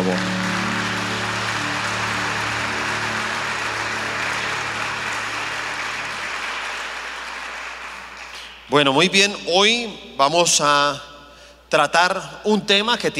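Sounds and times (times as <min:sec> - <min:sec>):
low sustained musical drone: 0:00.0 - 0:08.4
crowd applauding after a prayer: 0:00.0 - 0:08.7
speech: 0:00.1 - 0:00.4, 0:08.7 - 0:11.1, 0:11.7 - 0:13.1.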